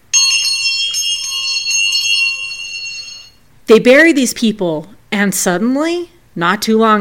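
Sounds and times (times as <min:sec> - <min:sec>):
bright metallic bell ringing: 0:00.0 - 0:03.4
speech: 0:03.7 - 0:07.0.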